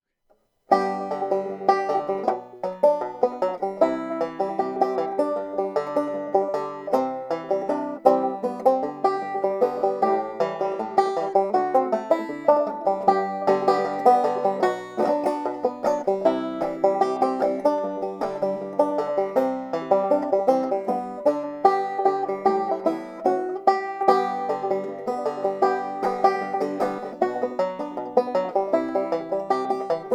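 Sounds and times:
six-string jumbo maple banjo: 0.7s - 30.1s.

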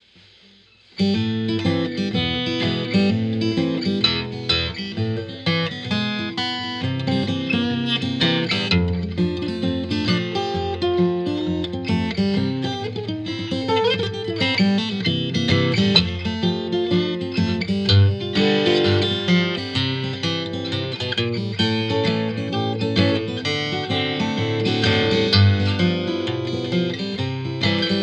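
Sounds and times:
Martin 000 16GT natural acoustic guitar: 0.0s - 28.0s.

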